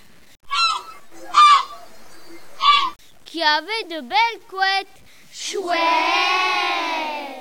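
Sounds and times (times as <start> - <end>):
seagull calling with harsh nasal squawks: 0.5 - 3.0
speech: 3.3 - 6.8.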